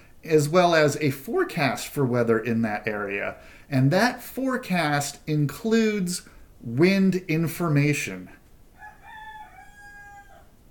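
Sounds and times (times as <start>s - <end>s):
low hiss: 0.0s - 10.7s
speech: 0.2s - 8.4s
rooster crowing: 8.8s - 10.7s.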